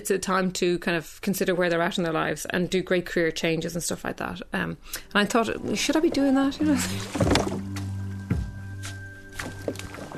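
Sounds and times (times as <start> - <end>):
speech: 0.0 - 7.7
dragon boat paddles splashing in water: 5.6 - 8.0, 9.3 - 10.1.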